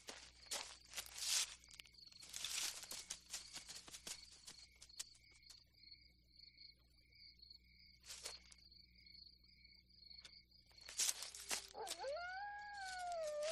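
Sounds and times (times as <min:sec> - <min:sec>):
crickets chirping: 0:00.0 - 0:13.5
sharp rustles: 0:02.2 - 0:04.6, 0:10.8 - 0:13.5
dog howling: 0:11.7 - 0:13.5.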